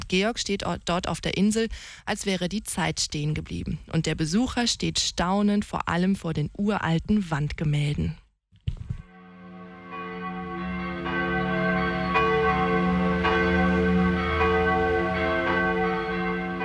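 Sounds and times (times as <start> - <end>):
speech: 0.1 - 8.2
medieval church bells ringing: 9.1 - 16.6.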